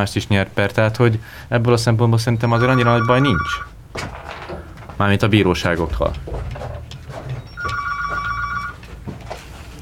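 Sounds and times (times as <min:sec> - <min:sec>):
speech: 0:00.0 - 0:04.2, 0:05.0 - 0:06.8
telephone ringing with electronic trill for incoming radio listener call: 0:02.4 - 0:03.8, 0:07.5 - 0:08.9.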